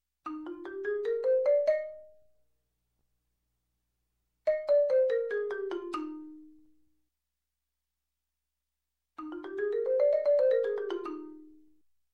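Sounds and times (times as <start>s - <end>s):
marimba playing up and down E flat major scale: 0.2s - 2.2s, 4.5s - 6.6s, 9.2s - 11.7s.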